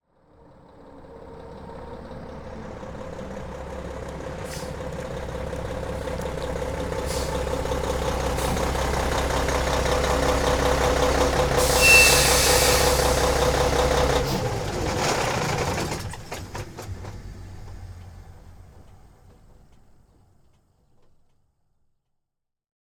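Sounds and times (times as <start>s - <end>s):
semi truck: 0.0s - 22.0s.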